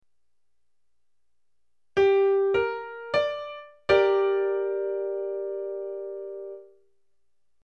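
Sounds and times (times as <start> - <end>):
triad chord: 2.0 - 6.7.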